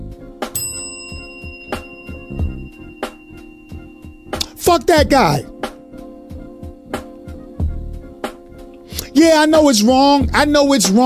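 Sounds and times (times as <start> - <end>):
bicycle-style bell dinging: 0.6 - 6.0
speech: 4.6 - 5.5, 9.2 - 11.0.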